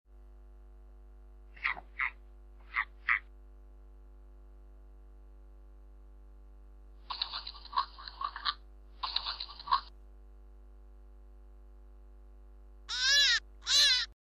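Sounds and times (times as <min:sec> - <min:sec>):
giant rabbit sounds: 0:01.6 - 0:03.3, 0:07.1 - 0:09.9, 0:12.9 - 0:14.1.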